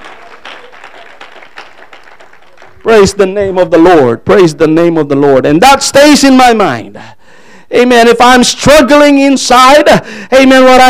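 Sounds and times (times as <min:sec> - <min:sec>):
audience clapping hands: 0:00.0 - 0:03.3
speech: 0:02.8 - 0:10.8.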